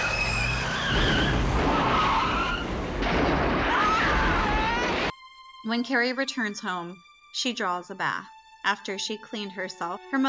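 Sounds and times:
car crashing: 0.0 - 5.1
car tires screeching: 0.0 - 5.1
speech: 5.7 - 10.2.

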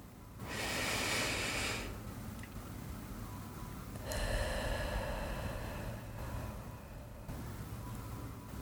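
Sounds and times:
faint steady noise: 0.0 - 8.6
deep breath in through the nose and out through the mouth: 0.4 - 2.0, 4.0 - 7.3.

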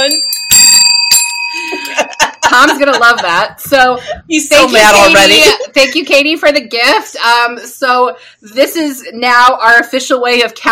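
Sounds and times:
hand bell ringing: 0.0 - 3.4
laughter: 1.6 - 6.0
speech: 2.6 - 10.6.

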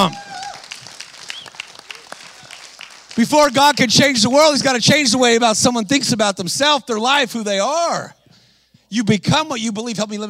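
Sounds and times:
speech: 0.0 - 0.3, 3.2 - 8.2, 8.9 - 10.2
audience applauding: 0.0 - 4.3
audience whistles: 1.2 - 1.7.

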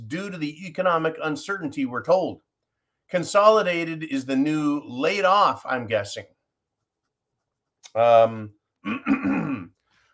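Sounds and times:
speech: 0.1 - 2.5, 3.1 - 6.4, 7.9 - 9.8
person coughing with a grunting raspy hack: 8.8 - 9.8.

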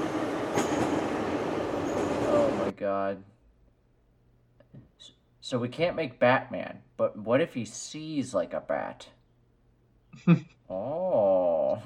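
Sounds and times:
train passing by: 0.0 - 2.8
speech: 2.8 - 3.4, 4.7 - 9.2, 10.1 - 11.8.

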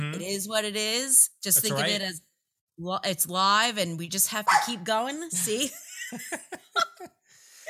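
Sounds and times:
speech: 0.2 - 7.1
dogs barking: 4.5 - 4.8
laughter: 5.4 - 7.1.

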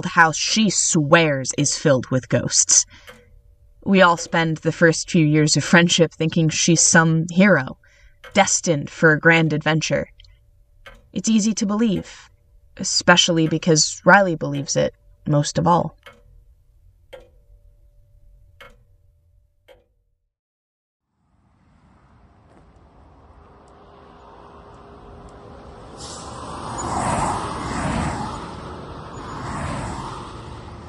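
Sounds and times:
speech: 0.0 - 3.2, 3.8 - 10.2, 11.1 - 16.2
sharp ticks: 0.0 - 16.4, 17.1 - 17.5
sports car speeding past on a road: 21.2 - 30.8.

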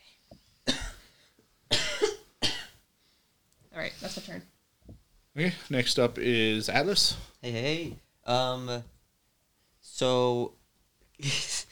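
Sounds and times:
harsh raspy coughing in smoke: 0.7 - 1.1, 1.7 - 2.8
speech: 4.0 - 4.6, 5.4 - 8.9, 10.0 - 10.6, 11.2 - 11.6.

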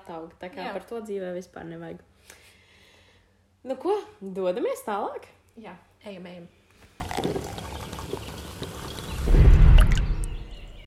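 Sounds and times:
speech: 0.1 - 2.4, 3.6 - 8.3
hot coffee poured into a cup: 7.0 - 10.4.

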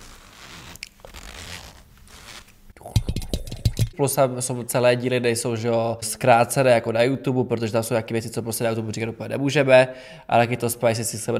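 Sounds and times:
zipper being pulled: 0.0 - 2.6
speech: 4.0 - 11.3.

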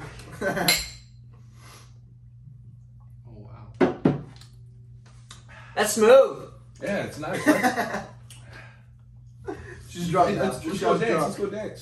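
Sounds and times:
low hum: 0.0 - 11.8
speech: 0.4 - 0.9, 5.8 - 8.1, 10.0 - 11.8
glasses clinking in a toast: 0.6 - 1.1
laughter: 7.2 - 8.2, 9.4 - 10.8.

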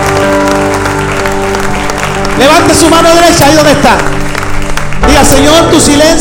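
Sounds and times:
audience applauding loudly: 0.0 - 6.1
speech: 2.4 - 4.3, 5.0 - 6.1.

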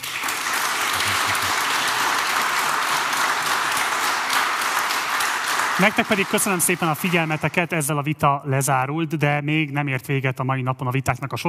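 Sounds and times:
large audience applauding parliamentary candidates at the end of a debate: 0.0 - 8.0
speech: 5.8 - 11.4.

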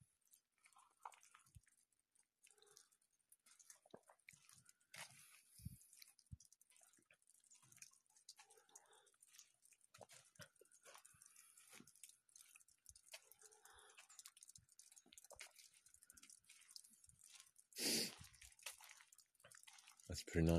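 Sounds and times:
water dripping from melting snow: 0.0 - 20.5
speech: 20.2 - 20.5.

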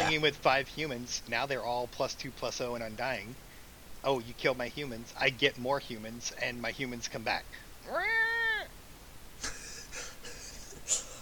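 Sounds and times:
speech: 0.1 - 3.4, 4.0 - 8.3
cat meowing: 7.9 - 8.7.

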